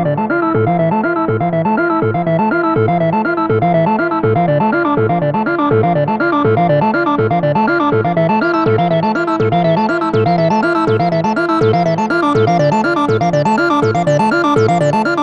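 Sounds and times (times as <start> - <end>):
synth loop in E minor: 0.2 - 15.2.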